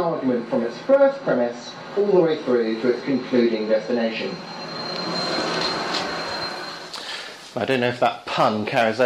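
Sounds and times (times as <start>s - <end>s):
speech: 0.1s - 5.2s, 7.6s - 9.0s
train wheels rumbling on railway track: 1.8s - 7.0s
high metallic squeal of train wheels: 2.4s - 7.4s.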